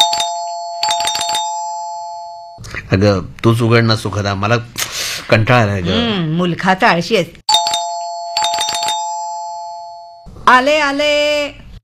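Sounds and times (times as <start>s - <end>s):
electronic doorbell chiming: 0.0s - 2.6s, 7.5s - 10.3s
speech: 2.9s - 7.4s, 10.5s - 11.6s.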